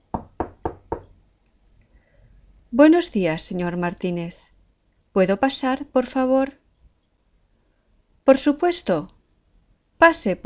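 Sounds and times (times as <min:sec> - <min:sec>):
knocking on an office door: 0:00.1 - 0:01.1
speech: 0:02.7 - 0:04.4, 0:05.2 - 0:06.6, 0:08.3 - 0:09.2, 0:10.0 - 0:10.4.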